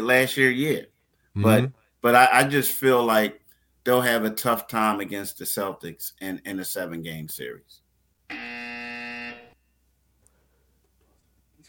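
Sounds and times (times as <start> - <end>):
speech: 0.0 - 8.5
basketball shot clock buzzer: 8.3 - 9.6.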